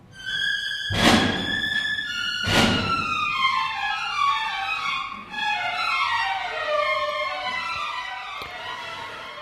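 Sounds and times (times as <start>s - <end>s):
orchestral opera prelude: 0.0s - 9.4s
heavy booming percussion strikes: 2.4s - 3.3s.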